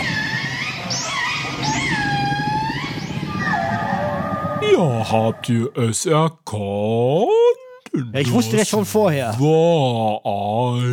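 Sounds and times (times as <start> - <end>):
whales communicating with song underwater: 0.0 - 5.4
constant low murky underwater rumble: 0.0 - 5.7
speech: 4.8 - 10.9.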